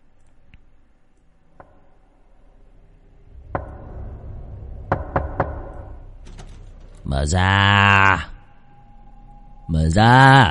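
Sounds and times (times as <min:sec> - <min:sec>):
low steady rumble: 0:00.0 - 0:10.0
knocking on a wooden door at night: 0:04.8 - 0:05.9
speech: 0:07.1 - 0:08.3, 0:09.9 - 0:10.4.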